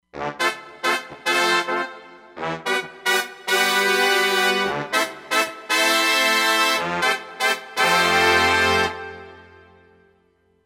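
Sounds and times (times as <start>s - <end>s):
brass part: 0.1s - 10.1s.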